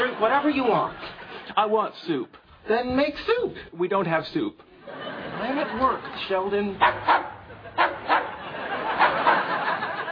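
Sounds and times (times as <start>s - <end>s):
laughter: 0.0s - 1.6s, 4.7s - 10.0s
speech: 0.2s - 7.2s
dog in a lab barking: 6.8s - 8.5s.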